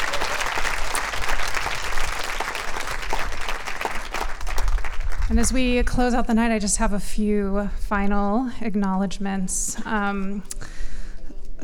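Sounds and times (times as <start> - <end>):
audience applause at an evening storytelling event: 0.0 - 5.4
speech: 5.3 - 10.5.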